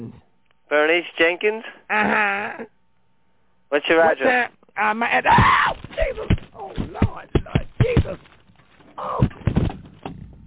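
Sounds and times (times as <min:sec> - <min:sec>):
speech: 0:00.1 - 0:02.7, 0:03.7 - 0:06.3, 0:09.0 - 0:09.4
person crying out over a telephone-like line: 0:05.2 - 0:08.2
dull thumps and knocks of a person tumbling out of a chair: 0:05.2 - 0:10.4.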